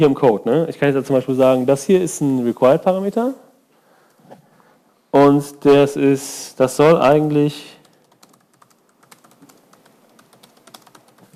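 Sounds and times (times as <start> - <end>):
speech: 0.0 - 3.4, 5.2 - 7.8
fast typing on a computer keyboard while writing code: 7.8 - 11.3.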